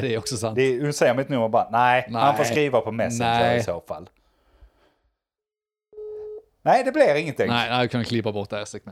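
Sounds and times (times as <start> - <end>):
speech: 0.0 - 4.2, 6.6 - 8.8
steady telephone tone before voicemail on a phone line: 5.9 - 6.4.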